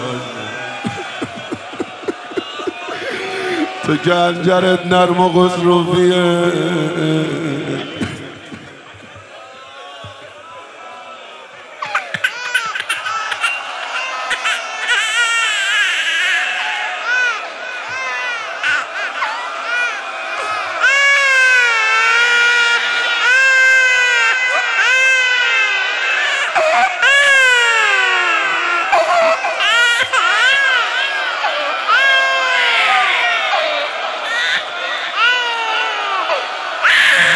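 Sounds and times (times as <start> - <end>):
laughter: 0.0 - 5.4, 7.0 - 9.8, 11.6 - 15.4, 29.0 - 37.3
murmuring crowd: 0.0 - 24.8, 28.8 - 37.3
speech: 3.9 - 8.0
baby crying and screaming: 11.8 - 37.3.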